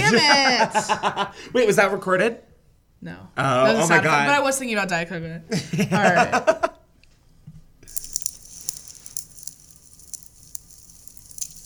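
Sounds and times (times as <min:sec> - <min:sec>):
speech: 0:00.1 - 0:06.8
fireplace fire crackling: 0:07.9 - 0:11.6.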